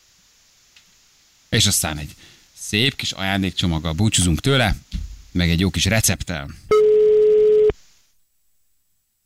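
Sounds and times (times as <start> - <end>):
speech: 1.5 - 6.7
telephone ringback tone on an outgoing call: 6.7 - 7.7.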